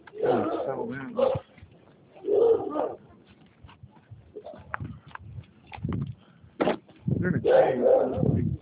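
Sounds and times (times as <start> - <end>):
neighbor's dogs barking: 0.1 - 1.5, 2.2 - 3.1, 7.4 - 8.4
speech: 0.2 - 1.4.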